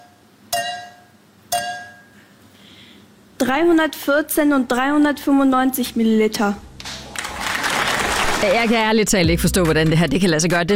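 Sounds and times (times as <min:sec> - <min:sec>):
two glasses of water clinking together: 0:00.0 - 0:02.2
speech: 0:03.4 - 0:06.7, 0:08.4 - 0:10.7.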